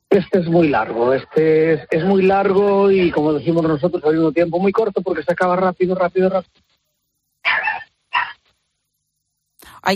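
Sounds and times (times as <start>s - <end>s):
speech: 0.2s - 6.7s
dog barking: 7.4s - 8.4s.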